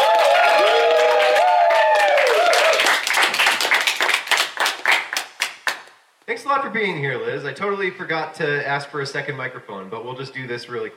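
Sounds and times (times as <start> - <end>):
audience applauding at a town brewery meeting and show: 0.0 - 6.0
speech: 6.5 - 10.9.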